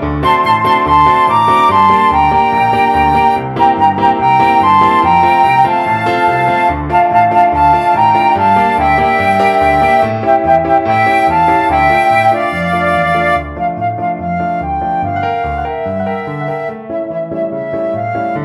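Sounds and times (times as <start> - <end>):
flute melody: 0.1 - 18.4.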